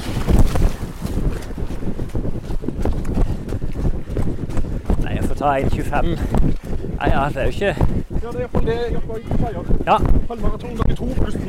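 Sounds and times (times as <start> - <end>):
water splashing and sloshing while crossing a stream: 0.0 - 4.7
rough wind buffeting: 0.0 - 11.4
speech: 5.4 - 11.4.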